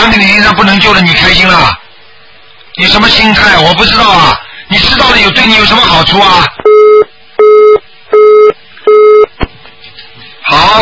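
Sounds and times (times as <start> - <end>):
speech: 0.1 - 1.8, 2.8 - 7.5, 10.5 - 10.8
telephone busy tone after call disconnects: 6.6 - 9.3.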